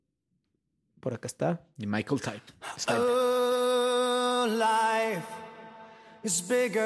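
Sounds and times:
speech: 1.0 - 3.6, 4.4 - 5.6, 6.2 - 6.8
lone unaccompanied sung vocal drenched in heavy reverb: 2.6 - 6.8.

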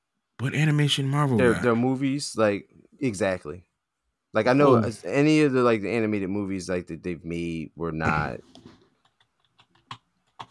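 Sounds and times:
speech: 0.4 - 3.7, 4.4 - 8.7
faint typing on a computer keyboard: 9.0 - 10.4.

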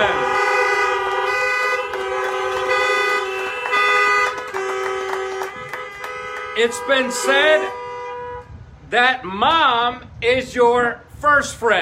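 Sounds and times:
chorus of car horns honking as a tribute to mothers: 0.0 - 8.8
speech: 6.6 - 7.8, 8.9 - 11.8.

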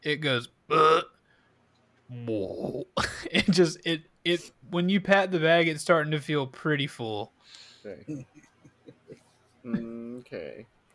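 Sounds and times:
speech: 0.0 - 1.1, 2.1 - 8.5, 9.6 - 10.8
voice imitating a burp for a creature in a bag: 0.7 - 1.2.

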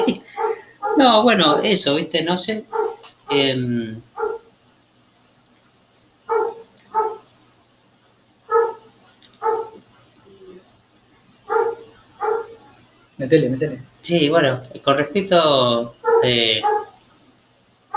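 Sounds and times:
dogs barking in short sharp woofs: 0.0 - 1.7, 2.6 - 3.4, 4.1 - 4.5, 6.2 - 7.4, 8.5 - 10.2, 11.4 - 12.9, 15.9 - 17.0
quiet low hum: 0.0 - 17.9
speech: 1.0 - 4.1, 13.3 - 16.8.

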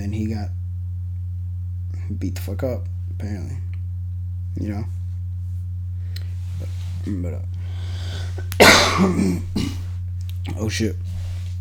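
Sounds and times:
steady low electrical hum: 0.0 - 11.5
speech: 0.2 - 0.6, 2.1 - 3.7, 4.5 - 5.0, 6.6 - 7.6, 8.4 - 9.8, 10.4 - 11.2
person coughing harshly: 8.0 - 9.9.

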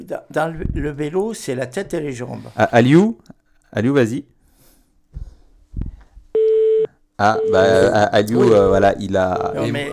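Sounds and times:
speech: 0.1 - 4.3, 7.2 - 9.9
telephone busy tone as the call drops: 6.4 - 7.6.

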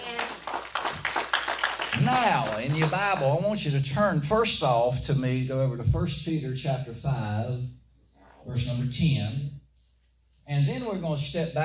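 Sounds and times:
church audience clapping hands rhythmically in praise: 0.0 - 3.4
speech: 2.1 - 7.8, 8.4 - 9.6, 10.5 - 11.6.

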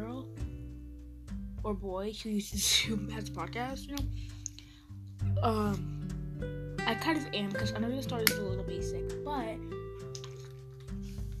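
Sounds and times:
speech: 1.6 - 4.4, 5.4 - 9.8
person sipping and swallowing water: 10.2 - 11.3.

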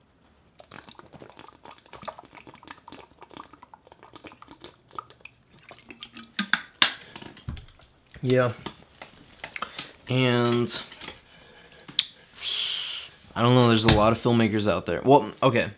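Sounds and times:
person sipping and swallowing water: 0.5 - 7.3
speech: 8.2 - 8.7, 10.1 - 10.9, 13.4 - 15.7.

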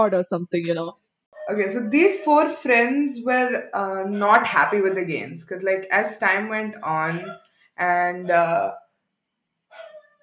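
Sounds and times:
speech: 0.0 - 8.8
dog barking: 9.7 - 10.2.

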